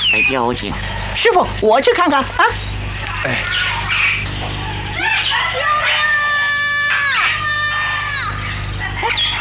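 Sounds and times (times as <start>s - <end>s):
speech: 0.1s - 3.7s
people shouting: 4.9s - 9.3s
child crying out: 5.0s - 8.5s.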